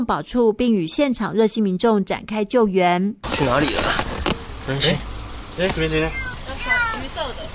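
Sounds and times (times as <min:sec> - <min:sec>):
speech: 0:00.0 - 0:04.0, 0:04.7 - 0:06.2
low noise: 0:00.0 - 0:07.5
orange kitten meowing trapped in a car engine compartment: 0:06.1 - 0:07.0.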